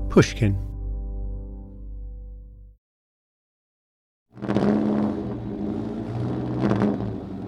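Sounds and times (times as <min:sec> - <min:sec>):
speech: 0:00.1 - 0:00.7
low engine drone: 0:04.3 - 0:07.4.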